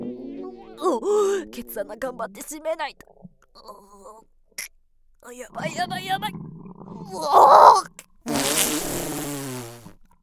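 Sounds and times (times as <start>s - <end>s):
speech: 0.8s - 8.0s
long loud buzzing fart: 8.3s - 10.2s.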